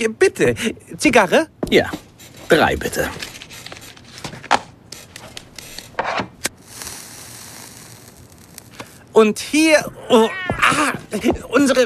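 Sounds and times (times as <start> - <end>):
speech: 0.0 - 3.4, 9.2 - 11.8
white cat meowing: 10.0 - 11.0.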